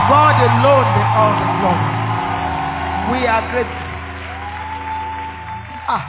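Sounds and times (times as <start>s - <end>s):
audience applause: 0.0s - 6.0s
speech: 3.2s - 3.8s.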